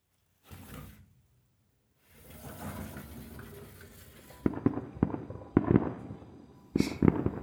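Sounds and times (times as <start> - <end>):
distant fireworks popping and thudding: 4.1 - 7.4.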